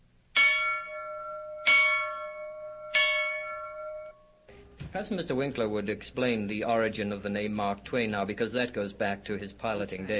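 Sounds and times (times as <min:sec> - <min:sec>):
large steamboat bell ringing: 0:00.4 - 0:04.6
speech: 0:04.9 - 0:10.1.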